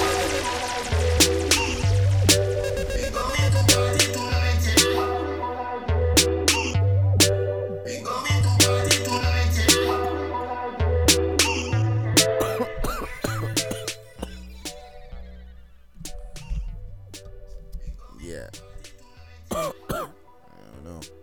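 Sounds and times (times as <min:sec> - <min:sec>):
steady tonal background: 0:00.0 - 0:21.2
person coughing: 0:12.4 - 0:14.5, 0:19.5 - 0:20.2
throat clearing: 0:12.4 - 0:14.5, 0:19.5 - 0:21.1.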